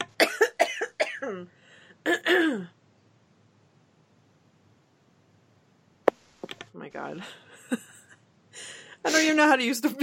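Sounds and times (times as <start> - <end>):
person coughing: 0.2 - 1.4, 2.1 - 2.7
speech: 6.9 - 7.8, 8.6 - 10.0.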